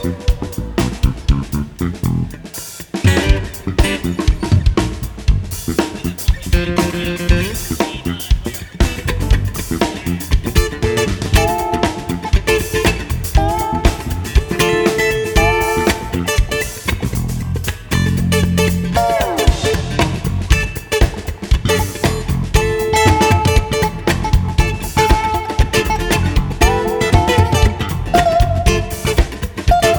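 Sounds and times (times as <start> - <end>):
string band jamming at a theatre in Raleigh NC: 0.0 - 29.9.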